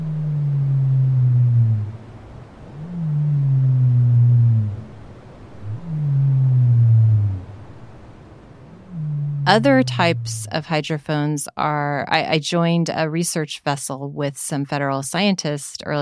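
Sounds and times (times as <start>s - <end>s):
soft underwater hiss: 0.0s - 10.6s
sped-up blue whale low descending moans: 0.0s - 10.6s
speech: 9.5s - 16.0s.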